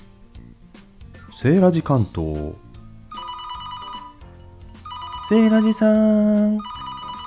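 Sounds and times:
speech: 1.4s - 2.6s, 5.3s - 6.7s
telephone with bright electronic melodic ringtone: 3.1s - 7.2s.

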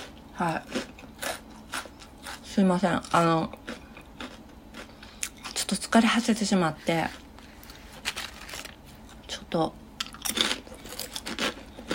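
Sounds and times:
chewing salad-flavoured thin rice crackers: 0.0s - 5.6s, 7.4s - 9.3s, 10.0s - 11.9s
speech: 0.4s - 0.8s, 2.6s - 3.6s, 5.7s - 7.2s, 9.5s - 9.8s.

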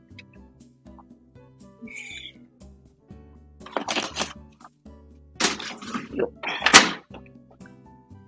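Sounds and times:
speech: 1.8s - 2.2s
washing machine electronic beep: 1.9s - 2.3s
washing machine door shutting with clattering thuds: 5.4s - 7.1s.

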